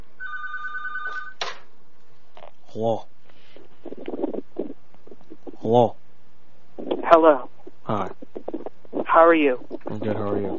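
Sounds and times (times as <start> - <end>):
telephone ringing with a buzzy electronic trill: 0.2 - 1.4
speech: 2.8 - 3.2, 5.6 - 6.0, 6.8 - 8.2, 9.2 - 10.5.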